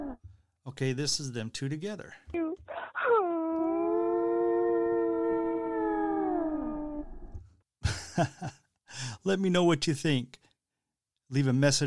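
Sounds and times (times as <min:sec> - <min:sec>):
speech: 0:00.7 - 0:02.4, 0:08.2 - 0:08.6, 0:09.2 - 0:10.4, 0:11.3 - 0:11.8
blue whale call: 0:03.4 - 0:07.4.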